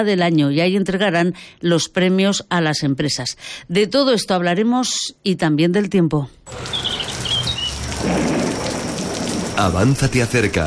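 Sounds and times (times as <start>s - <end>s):
speech: 0.0s - 7.3s, 9.6s - 10.6s
steady hissing rain: 6.5s - 10.6s
faint bird chirps: 6.6s - 7.8s
thunder rumble: 7.8s - 10.0s.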